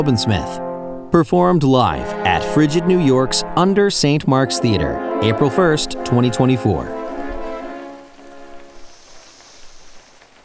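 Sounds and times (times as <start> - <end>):
speech: 0.0 - 7.0
rain falling during a live stage performance: 5.0 - 10.4.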